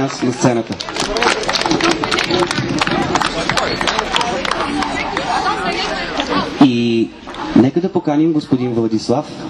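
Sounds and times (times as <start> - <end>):
crowd clapping in a large room: 0.0 - 6.3
murmuring voices in a large room: 0.0 - 9.4
speech: 0.0 - 9.4.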